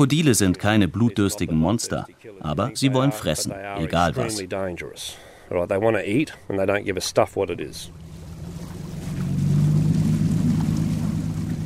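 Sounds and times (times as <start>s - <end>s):
speech: 0.0s - 8.0s
boat engine droning on a river: 7.5s - 11.6s
faint water wash beneath a boat: 7.5s - 11.6s.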